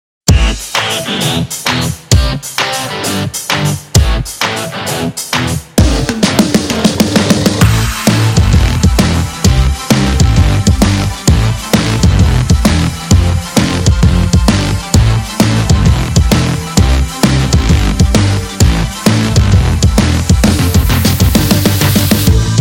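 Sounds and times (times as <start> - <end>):
energetic rock pop music: 0.3 - 22.5.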